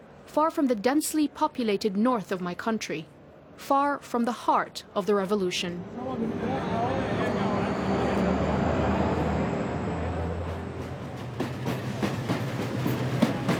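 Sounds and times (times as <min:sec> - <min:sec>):
speech: 0:00.4 - 0:06.8
old diesel passenger train rumbling: 0:05.8 - 0:13.5
train wheels clacking over rail joints: 0:10.2 - 0:13.5.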